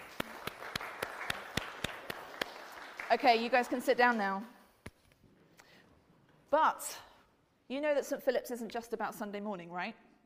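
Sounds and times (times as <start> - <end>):
church congregation clapping during a Sunday morning service: 0.0 - 4.1
speech: 3.1 - 4.6, 6.5 - 7.1, 7.7 - 10.0.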